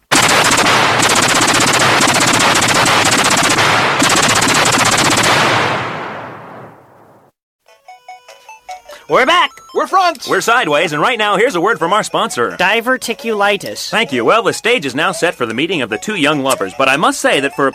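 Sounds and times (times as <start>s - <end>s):
machine gun fire: 0.1s - 6.9s
speech: 9.1s - 17.7s.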